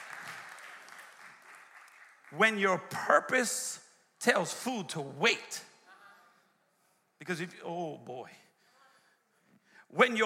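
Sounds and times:
audience clapping: 0.0s - 3.1s
speech: 2.3s - 5.7s, 7.2s - 8.4s, 9.9s - 10.2s.

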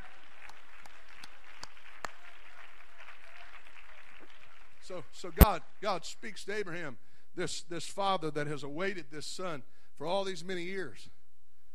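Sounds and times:
crowd applauding in praise: 0.0s - 5.2s
speech: 4.9s - 11.2s.

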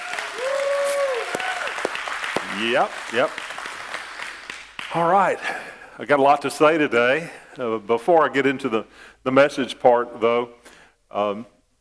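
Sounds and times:
congregation clapping: 0.0s - 5.7s
speech: 2.6s - 3.5s, 4.9s - 11.5s.

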